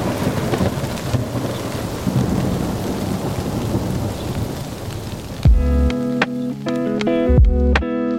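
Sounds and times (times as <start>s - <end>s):
deep low thunder rumbles: 0.0s - 6.3s
steady dense rain: 0.0s - 7.7s
tonal music with sustained notes: 5.5s - 8.1s.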